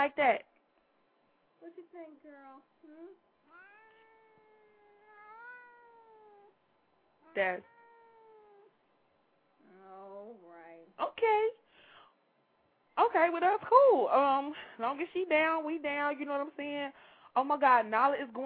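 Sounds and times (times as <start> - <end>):
speech: 0.0 - 0.5, 1.6 - 3.3, 7.3 - 7.7, 10.2 - 11.6, 13.0 - 18.4
cat meowing and yowling: 3.5 - 6.6, 7.2 - 8.7.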